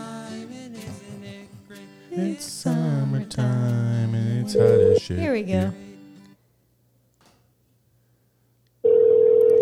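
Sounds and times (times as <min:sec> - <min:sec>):
speech: 0:02.2 - 0:03.7, 0:04.4 - 0:05.8
outgoing phone call ringback tone: 0:04.6 - 0:05.0, 0:08.8 - 0:09.6.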